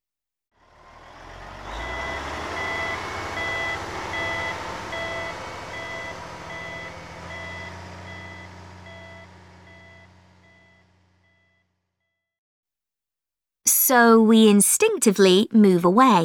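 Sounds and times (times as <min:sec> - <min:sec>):
reversing truck short high-pitched beeps: 0:00.8 - 0:12.2
speech: 0:13.9 - 0:16.2.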